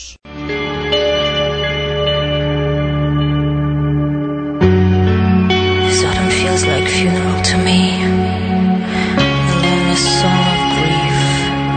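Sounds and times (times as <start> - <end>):
dense sustained chords drenched in echo and reverb: 0.5 - 11.7
song by a band with a female singer: 5.9 - 11.7.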